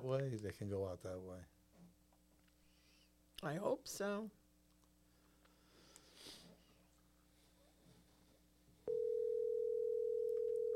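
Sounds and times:
speech: 0.0 - 1.6, 3.4 - 4.4
person sniffing: 5.6 - 6.8
telephone dial tone: 8.9 - 10.7.

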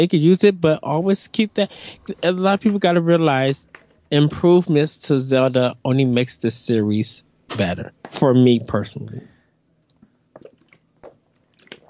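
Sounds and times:
speech: 0.0 - 9.3
person taking a swig of water, gulping and swallowing: 10.3 - 11.8.

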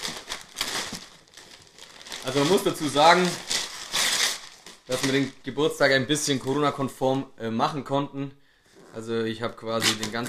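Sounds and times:
reused gift wrapping paper crinkling while unwrapping a package: 0.0 - 5.5
speech: 2.2 - 3.5, 4.9 - 8.4, 9.0 - 10.2.

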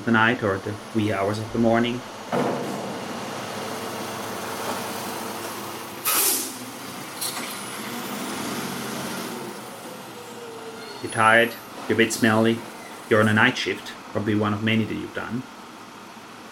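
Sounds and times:
speech: 0.0 - 2.8, 11.0 - 15.5
garbage truck engine droning down a street in Sydney at night: 0.0 - 16.5
garbage truck air brake hiss: 6.0 - 7.4.

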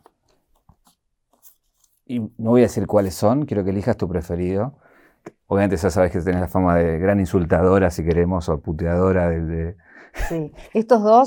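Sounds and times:
papers rustling and shuffling: 0.0 - 2.1
speech: 2.1 - 4.9, 5.5 - 11.2.

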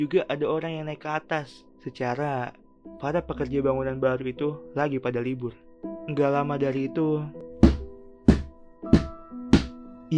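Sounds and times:
speech: 0.0 - 7.4
heavy blunt knocks of a solid object struck with a hammer: 7.6 - 9.8.

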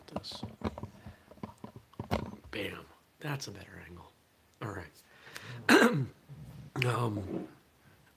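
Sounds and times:
speech: 0.2 - 0.5, 2.6 - 4.1, 6.9 - 7.6
wet phlegmy throat clearing and coughing from a sick person: 5.6 - 6.2.

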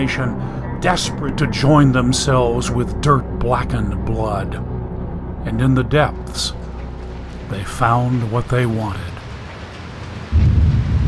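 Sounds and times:
deep storm rumble: 0.0 - 11.0
speech: 0.1 - 4.7, 5.4 - 6.6, 7.5 - 9.1
torrential rain in a storm: 5.7 - 11.0.

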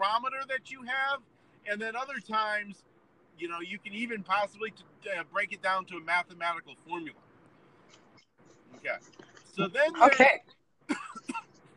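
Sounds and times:
speech: 0.5 - 7.2, 8.7 - 11.4
person coughing: 10.9 - 11.5.

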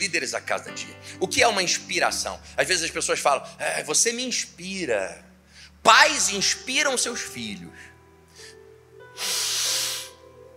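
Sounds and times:
speech: 0.0 - 7.9
person inhaling deeply during a sermon: 5.4 - 5.8, 7.8 - 8.6, 9.2 - 10.2
person sniffing: 8.4 - 8.6, 9.2 - 10.2.

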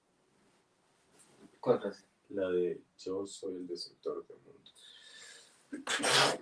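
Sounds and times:
speech: 1.6 - 5.0, 5.7 - 6.4
person sneezing: 5.8 - 6.4.

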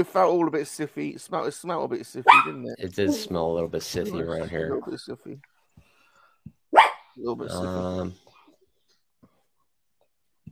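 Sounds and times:
speech: 0.0 - 5.5, 7.2 - 8.3
dog barking: 2.2 - 2.7, 6.7 - 7.1.

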